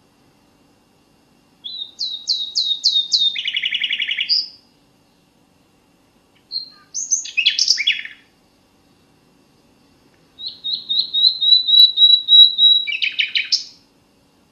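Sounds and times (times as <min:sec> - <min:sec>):
common nightingale singing: 0:01.6 - 0:05.2, 0:06.4 - 0:08.3, 0:10.4 - 0:13.8.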